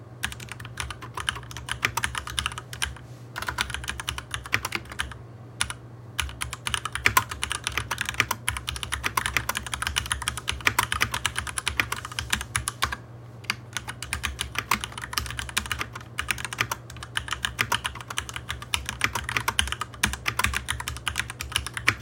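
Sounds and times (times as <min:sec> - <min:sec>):
fast typing on a mechanical keyboard with red switches: 0:00.2 - 0:22.0.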